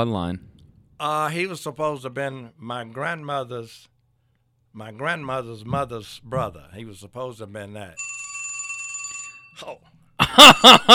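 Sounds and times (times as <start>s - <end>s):
speech: 0.0s - 3.9s, 4.7s - 8.1s, 9.6s - 10.9s
mobile phone ringing with a steady electronic tone: 8.0s - 9.7s
laughter: 10.2s - 10.9s.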